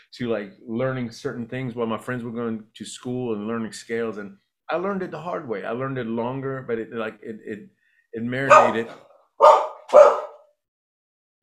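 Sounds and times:
speech: 0.1s - 9.5s
dog barking: 8.5s - 10.6s.

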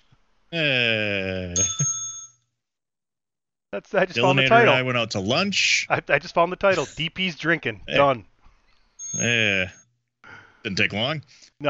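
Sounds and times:
speech: 0.5s - 1.7s, 3.8s - 8.3s, 9.1s - 9.8s, 10.6s - 11.6s
bright bell ringing: 1.6s - 2.4s, 9.0s - 9.8s.

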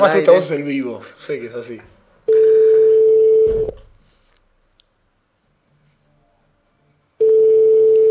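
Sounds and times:
speech: 0.0s - 2.0s
telephone ringback tone while placing a call: 2.3s - 3.7s, 7.2s - 8.0s.

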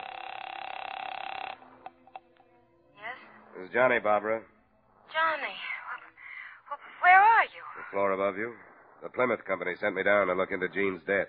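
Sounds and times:
telephone line tone buzzing in a hotel in Charleston: 0.0s - 2.4s
speech: 3.6s - 4.5s, 7.9s - 11.2s.

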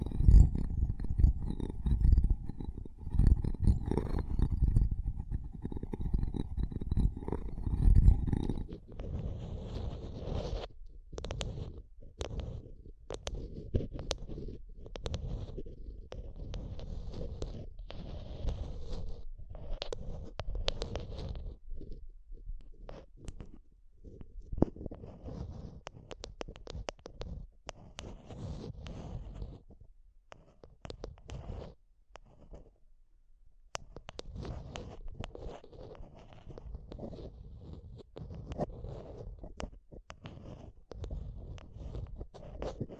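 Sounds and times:
microphone scratching and scraping: 0.0s - 22.0s, 22.7s - 29.8s, 34.0s - 42.9s.

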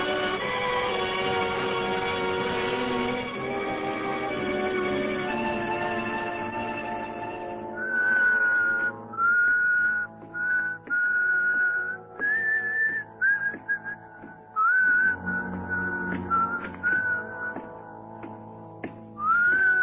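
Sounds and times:
soft accompaniment: 0.0s - 19.8s
person whistling a melodic tune: 7.8s - 17.6s, 19.2s - 19.8s.

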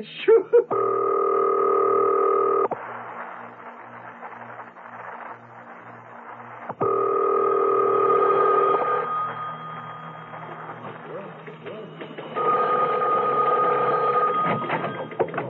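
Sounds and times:
speech: 0.0s - 0.7s
steady electronic telephone tone: 0.7s - 2.7s, 6.8s - 9.4s, 12.4s - 15.1s.

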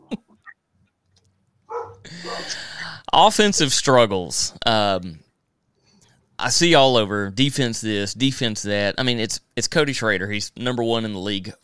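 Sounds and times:
person imitating a bulldog's bark: 1.7s - 2.6s
speech: 2.0s - 5.2s, 6.4s - 11.6s.

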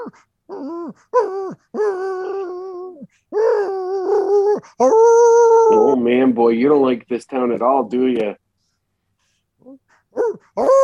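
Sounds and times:
voice imitating a dog whimpering as its sedative wears off: 0.0s - 6.4s, 9.6s - 10.8s
speech: 0.1s - 2.1s, 4.6s - 8.4s, 9.6s - 10.8s.

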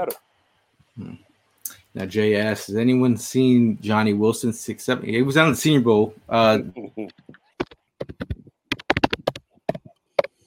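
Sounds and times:
speech: 0.0s - 0.3s, 1.0s - 8.3s
computer keys being typed: 7.1s - 9.9s.

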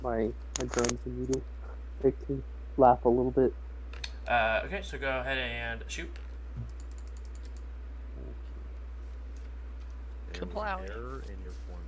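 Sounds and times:
speech: 0.0s - 3.6s, 4.2s - 6.7s, 10.4s - 11.8s
steady low hum: 0.0s - 11.8s
typing on a computer keyboard: 6.7s - 7.6s.

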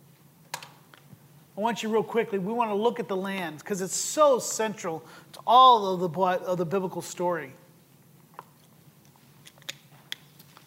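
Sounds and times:
speech: 1.6s - 7.6s
many Bible pages being turned: 9.1s - 10.6s.

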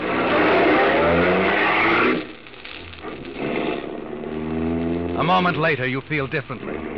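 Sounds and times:
car engine revving and accelerating: 0.0s - 2.3s, 3.4s - 5.6s
speech: 5.3s - 6.9s.

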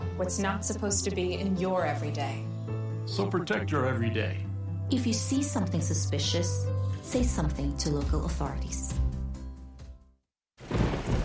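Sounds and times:
speech: 0.2s - 2.5s, 3.1s - 9.0s
heavy pouring rain: 10.6s - 11.2s
low droning rumble of thunder: 10.6s - 11.2s.

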